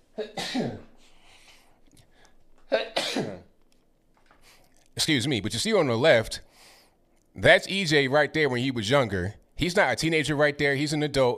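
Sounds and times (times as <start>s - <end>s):
faint noise: 0.0s - 11.3s
speech: 0.2s - 0.8s, 5.0s - 6.5s, 7.4s - 11.3s
person sneezing: 0.2s - 1.2s, 2.7s - 3.5s.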